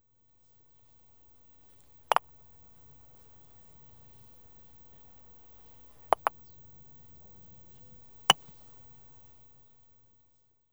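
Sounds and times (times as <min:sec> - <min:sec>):
croquet ball being hit with a croquet stroke: 0:06.2 - 0:06.4.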